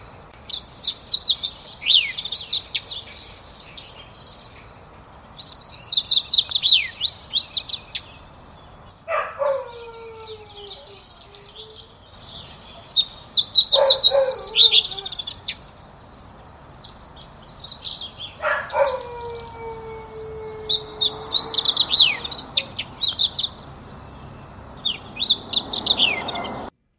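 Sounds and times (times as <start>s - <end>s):
fox sparrow singing with chirps and sliding whistles: 0.0s - 26.7s
dog howling with descending wails: 9.1s - 11.9s, 13.7s - 15.4s, 18.4s - 23.5s.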